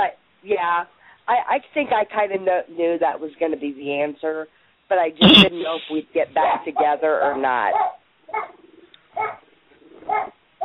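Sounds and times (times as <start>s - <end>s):
speech: 0.0s - 8.6s
dog growling: 8.3s - 10.6s.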